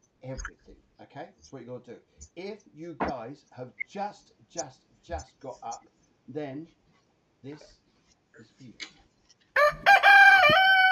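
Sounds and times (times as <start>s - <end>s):
speech: 0.2s - 6.8s, 7.4s - 7.8s, 8.4s - 9.0s
rooster crowing: 9.6s - 10.9s.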